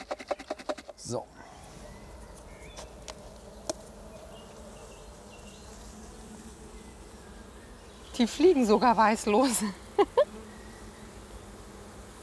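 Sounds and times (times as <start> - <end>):
honeybees dusted with sugar buzzing inside a jar: 0.0 - 12.2
speech: 1.1 - 1.4, 8.2 - 10.3.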